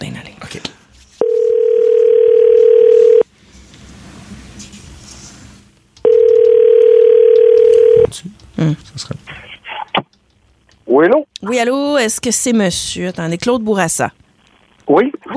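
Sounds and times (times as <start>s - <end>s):
telephone dial tone while a call is placed: 1.2s - 3.2s, 6.0s - 8.1s
speech: 11.0s - 14.2s.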